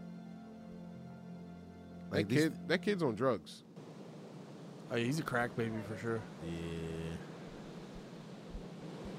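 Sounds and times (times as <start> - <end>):
speech: 2.1 - 3.7, 4.9 - 7.3
ocean waves: 3.8 - 9.1.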